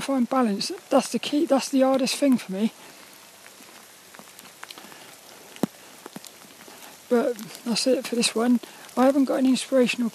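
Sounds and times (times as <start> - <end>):
speech: 0.0 - 3.0, 7.2 - 10.1
steady rain on outdoor surfaces: 0.0 - 10.1
scattered drips and taps of rain: 3.5 - 6.8.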